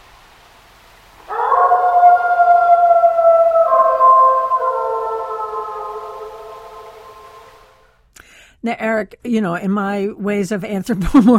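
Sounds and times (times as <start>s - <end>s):
single wolf howling: 1.3s - 7.8s
speech: 8.6s - 11.3s.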